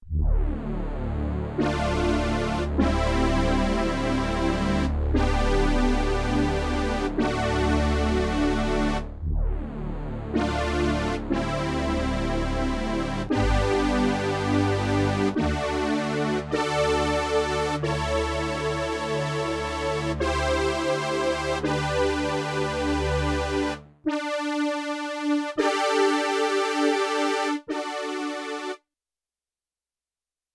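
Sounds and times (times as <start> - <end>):
Yamaha TX16W synthesizer: 0.2 - 28.8.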